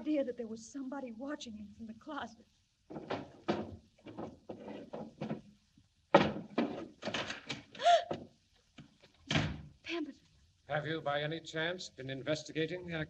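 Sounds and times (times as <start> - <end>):
speech: 0.1 - 5.3, 10.7 - 13.0
wooden desk drawers sliding open and banging shut: 2.9 - 7.7.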